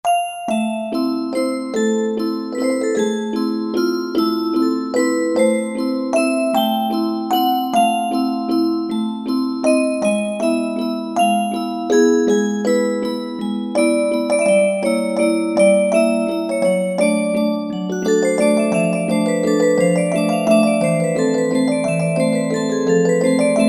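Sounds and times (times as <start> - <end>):
jewelry box melody on a synthesizer: 0.1 - 23.6.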